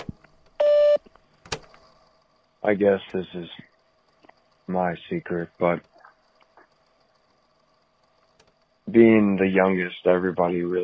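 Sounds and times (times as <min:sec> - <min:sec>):
faint clicks: 0:00.0 - 0:10.8
voicemail beep: 0:00.6 - 0:01.0
speech: 0:02.6 - 0:03.7, 0:04.7 - 0:05.9, 0:08.9 - 0:10.8.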